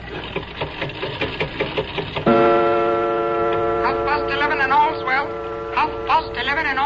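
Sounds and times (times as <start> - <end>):
London-made clock from 1752 ticking: 1.4 - 6.8.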